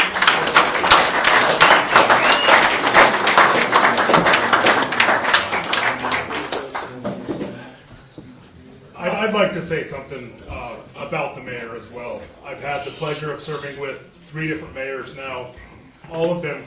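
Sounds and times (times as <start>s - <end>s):
crowd applauding the mayor: 0.0s - 7.3s
speech: 9.8s - 16.6s.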